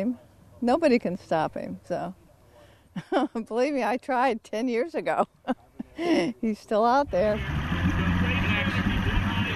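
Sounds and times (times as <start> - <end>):
speech: 0.0 - 2.2, 3.0 - 7.6
motorboat engine rumbling while backing out to tow a water skier: 7.0 - 9.5.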